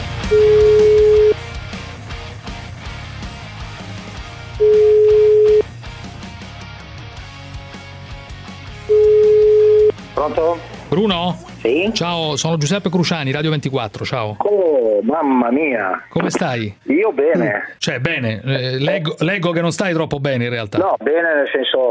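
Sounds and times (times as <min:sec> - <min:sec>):
telephone ringback tone while placing a call in Italy: 0:00.3 - 0:01.4, 0:04.6 - 0:05.7, 0:08.9 - 0:09.9
speech: 0:10.3 - 0:21.8.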